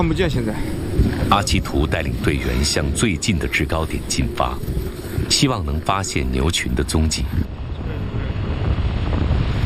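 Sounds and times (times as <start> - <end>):
speech: 0.0 - 7.6
blizzard wind rising over an open snowfield: 0.0 - 9.6.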